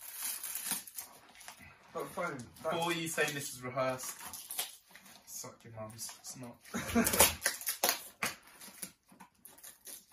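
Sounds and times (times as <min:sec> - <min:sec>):
cardboard box being opened by hand: 0:00.0 - 0:01.1, 0:06.8 - 0:10.1
speech: 0:02.0 - 0:04.4, 0:05.6 - 0:07.5.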